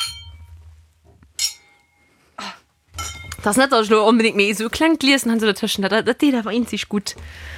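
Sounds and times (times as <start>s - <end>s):
glasses clinking in a toast: 0.0s - 0.6s, 1.4s - 2.1s, 2.9s - 3.4s
speech: 3.4s - 7.5s.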